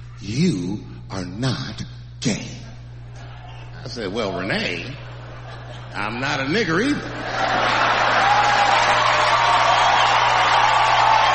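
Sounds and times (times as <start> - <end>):
speech: 0.2 - 2.6, 3.8 - 5.1, 6.0 - 7.9
laughter: 3.0 - 10.8
large audience applauding and cheering: 7.3 - 11.3.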